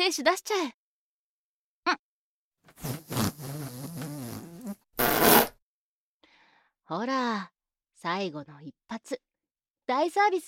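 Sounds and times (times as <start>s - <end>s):
speech: 0.0s - 0.8s, 1.8s - 2.0s, 6.9s - 9.3s, 9.9s - 10.4s
fart: 2.8s - 5.6s.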